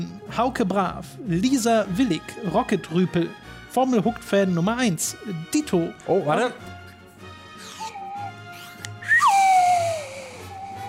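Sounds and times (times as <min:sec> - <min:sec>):
speech: 0:00.0 - 0:06.8
person whistling an imitation of a Formula 1 car speeding past: 0:07.8 - 0:10.8.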